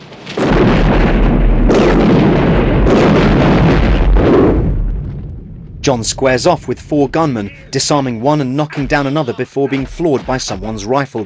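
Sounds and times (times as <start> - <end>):
pickup truck exploding after crashing into a boulder: 0.1 - 9.1
speech: 5.9 - 11.2.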